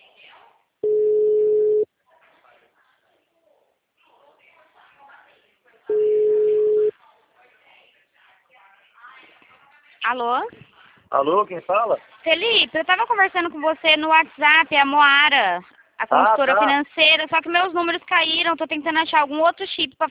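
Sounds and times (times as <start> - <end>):
ringback tone of an unanswered phone call: 0.8 - 1.8, 5.9 - 6.9
speech: 10.1 - 20.0.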